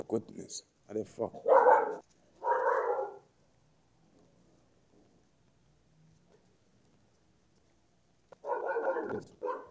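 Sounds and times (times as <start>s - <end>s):
speech: 0.0s - 2.0s
dogs barking: 1.4s - 3.3s, 8.4s - 9.6s.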